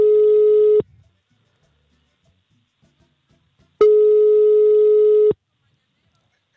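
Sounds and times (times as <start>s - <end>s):
telephone line tone from an unanswered call: 0.0s - 0.8s, 3.8s - 5.4s.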